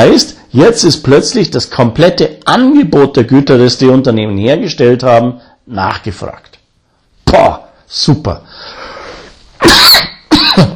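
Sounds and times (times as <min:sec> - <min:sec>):
speech: 0:00.0 - 0:06.5, 0:07.3 - 0:08.9
loud harsh coughs: 0:09.6 - 0:10.7.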